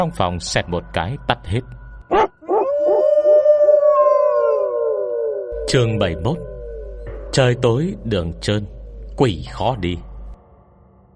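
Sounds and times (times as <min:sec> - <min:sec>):
speech: 0:00.0 - 0:02.4, 0:05.7 - 0:06.5, 0:07.3 - 0:10.1
dog barking: 0:02.1 - 0:02.7
dog howling: 0:02.1 - 0:07.4.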